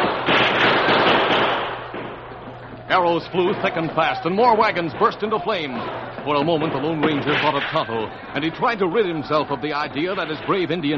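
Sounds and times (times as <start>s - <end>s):
guns firing in a battle around a circle of wagons: 0.0s - 8.2s
speech: 3.0s - 10.9s.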